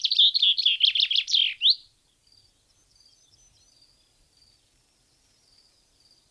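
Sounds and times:
Common chaffinch song, Fringilla coelebs: 0.0s - 1.8s.

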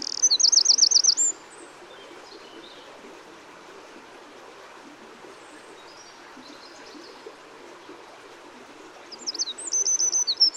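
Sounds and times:
Eurasian wren Troglodytes troglodytes song: 0.0s - 1.4s, 9.1s - 10.5s
faint background hiss: 0.0s - 10.5s.

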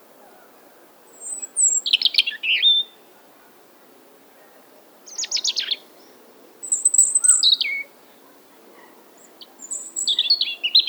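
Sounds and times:
European robin Erithacus rubecula singing: 1.1s - 3.0s, 5.1s - 8.0s, 9.2s - 10.8s.

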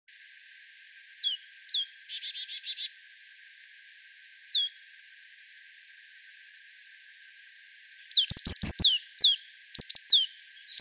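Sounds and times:
marsh tit Poecile palustris calls: 1.2s - 2.9s, 4.5s - 4.7s, 7.8s - 10.8s.

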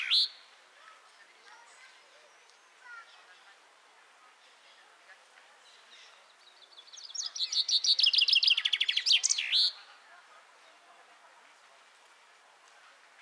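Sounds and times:
common chaffinch Fringilla coelebs singing: 0.0s - 0.4s, 6.2s - 9.8s
faint background birds: 0.0s - 11.0s.

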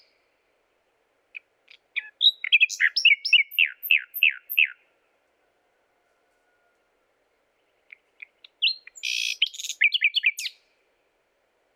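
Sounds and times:
common nightingale Luscinia megarhynchos singing: 0.0s - 0.4s, 1.3s - 4.8s, 7.6s - 10.7s.

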